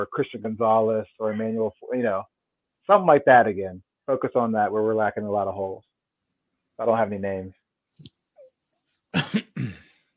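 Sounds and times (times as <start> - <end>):
speech: 0.0 - 5.9, 6.8 - 8.1, 9.1 - 9.8
person coughing: 9.2 - 10.0
throat sound: 9.2 - 10.0.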